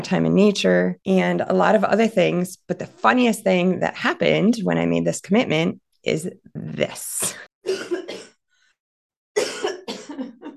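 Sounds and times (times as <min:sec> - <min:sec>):
speech: 0:00.0 - 0:08.0
person coughing hard in a fit: 0:07.3 - 0:08.4, 0:09.4 - 0:10.5.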